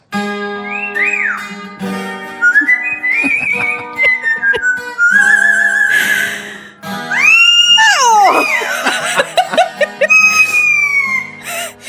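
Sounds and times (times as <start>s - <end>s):
parrot singing a rock song: 0.6s - 1.7s, 2.4s - 6.1s, 7.1s - 8.7s, 10.1s - 11.2s
laughter: 2.6s - 6.4s, 8.2s - 11.8s.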